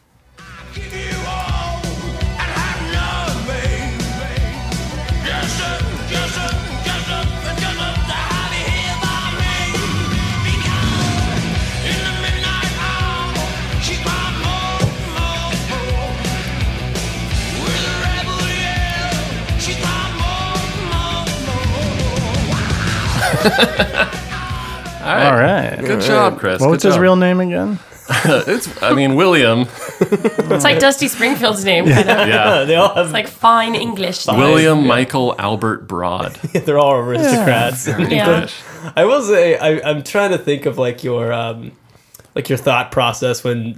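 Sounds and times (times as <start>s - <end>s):
loud driving 1980s rock song with drums, distorted guitars and shouted vocals: 0.3s - 25.5s
laughter: 22.9s - 24.9s, 28.0s - 33.2s, 34.3s - 34.8s, 36.2s - 39.1s
speech: 23.4s - 24.1s, 25.1s - 41.8s, 42.4s - 43.7s.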